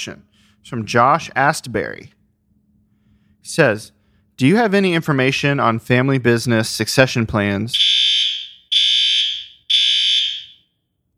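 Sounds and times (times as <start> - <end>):
speech: 0.0 - 2.2, 3.4 - 8.0
fire alarm sounding in a building with a kitchen below: 7.8 - 10.7.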